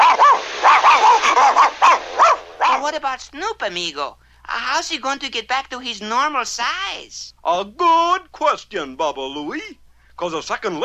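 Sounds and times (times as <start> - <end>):
dog barking as it gallops behind a garbage truck: 0.0 - 2.8
speech: 2.9 - 10.8.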